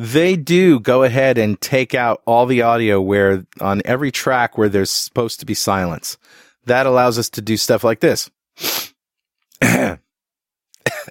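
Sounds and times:
speech: 0.0 - 8.9
short throat-clearing coughs: 9.6 - 10.1, 10.8 - 11.0.

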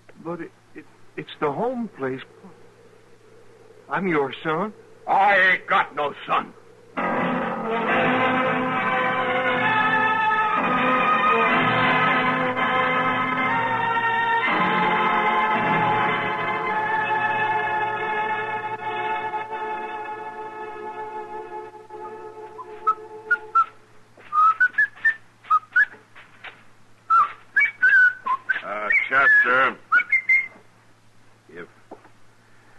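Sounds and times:
low hum: 0.0 - 31.5
speech: 0.2 - 2.6, 3.9 - 6.6
sustained droning tone: 2.2 - 23.6
person whistling a short lilting tune: 22.0 - 26.0, 27.1 - 30.6.

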